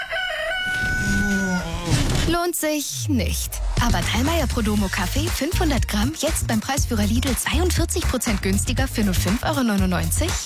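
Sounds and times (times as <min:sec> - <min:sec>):
rooster crowing: 0:00.0 - 0:01.9
speech: 0:02.5 - 0:10.4.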